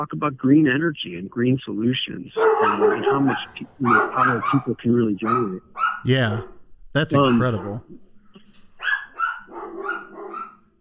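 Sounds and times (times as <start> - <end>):
speech: 0.0 - 8.0
dogs barking and yipping: 2.4 - 10.8.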